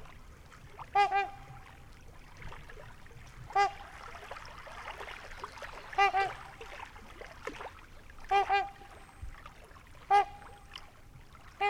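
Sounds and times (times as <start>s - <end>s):
trumpeter swan trumpeting in Wisconsin USA near a lake: 0.9s - 1.7s, 3.5s - 3.9s, 5.9s - 6.6s, 8.2s - 9.2s, 10.0s - 10.8s.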